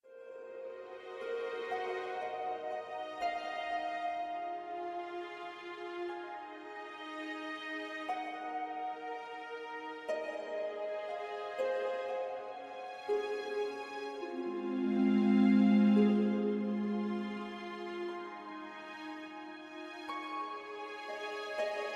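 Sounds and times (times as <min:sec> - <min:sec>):
light ambient music: 0:00.1 - 0:21.9.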